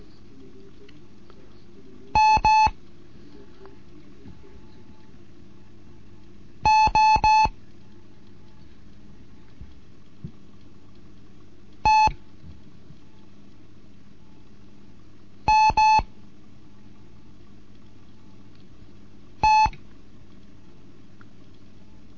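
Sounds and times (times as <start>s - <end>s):
faint low hum: 0.0s - 22.1s
Morse code beeps from a Morse code lesson: 2.2s - 2.8s, 6.6s - 7.6s, 11.8s - 12.2s, 15.5s - 16.1s, 19.4s - 19.8s.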